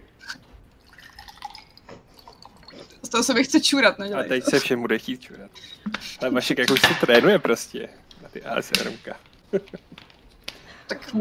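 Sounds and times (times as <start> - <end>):
water pouring: 0.2 - 3.4
water dripping and splashing: 0.8 - 3.1
speech: 3.1 - 10.0, 10.9 - 11.2.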